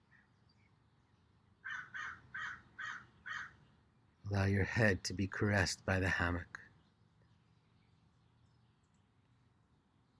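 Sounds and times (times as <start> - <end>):
crow cawing: 1.6 - 3.6
speech: 4.3 - 6.6.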